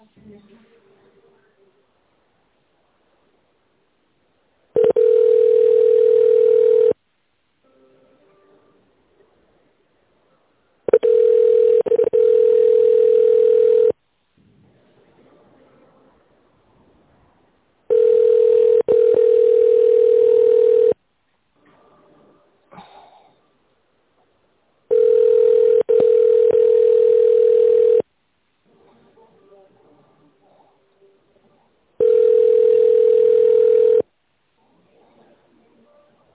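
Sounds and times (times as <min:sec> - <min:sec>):
telephone ringback tone on a company line: 0:04.8 - 0:07.0, 0:10.9 - 0:14.0, 0:17.9 - 0:21.0, 0:24.9 - 0:28.0, 0:32.0 - 0:34.0.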